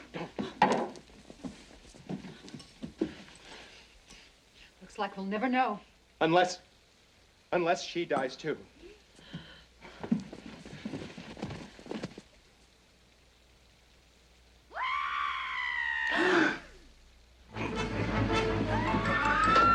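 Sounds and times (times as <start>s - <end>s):
steady hissing noise: 0.0s - 19.7s
speech: 5.0s - 6.7s, 7.5s - 8.7s
man screaming: 14.7s - 16.8s.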